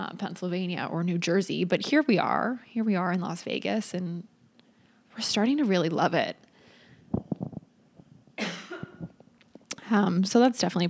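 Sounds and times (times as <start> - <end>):
speech: 0.0 - 4.3, 5.2 - 6.4, 9.9 - 10.8
sharp coughs: 8.4 - 9.2.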